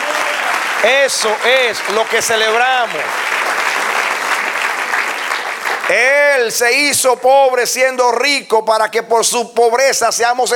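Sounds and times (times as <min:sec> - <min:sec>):
church congregation applauding during a service: 0:00.0 - 0:06.9
speech: 0:00.8 - 0:03.6, 0:05.9 - 0:10.5.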